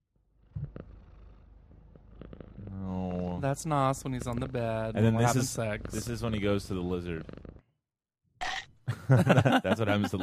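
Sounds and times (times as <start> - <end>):
cat purring: 0.4 - 7.6
speech: 3.4 - 7.4, 9.1 - 10.2
laughter: 8.9 - 10.2.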